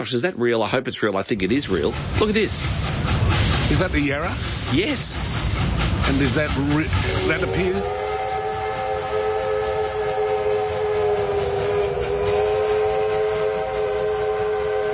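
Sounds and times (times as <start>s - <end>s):
speech: 0.0s - 5.4s, 6.0s - 8.0s
steam train rumbling and clattering past: 1.3s - 14.9s
steam train whistle chord: 7.0s - 14.9s.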